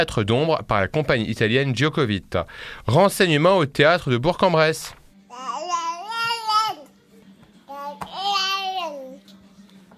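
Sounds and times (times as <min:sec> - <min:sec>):
speech: 0:00.0 - 0:05.6
baby girl babbling: 0:05.3 - 0:06.9, 0:07.7 - 0:09.2.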